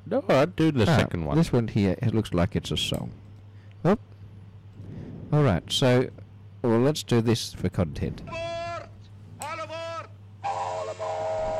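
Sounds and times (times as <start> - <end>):
speech: 0.1 - 3.2, 3.8 - 4.1, 5.3 - 8.6
chiming whistle of an animated circus train: 10.4 - 11.5.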